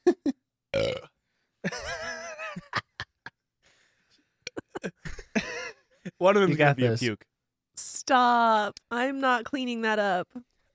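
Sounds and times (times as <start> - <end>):
long gurgling burp: 0.7 - 1.2, 4.4 - 5.0
speech: 0.7 - 1.8, 6.2 - 7.3, 8.1 - 10.7.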